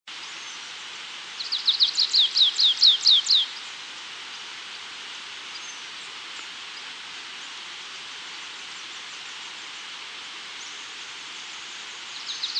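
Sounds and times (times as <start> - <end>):
steady hiss: 0.1 - 12.5
stripe-tailed yellow finch Sicalis citrina citrina chirping: 1.4 - 3.6.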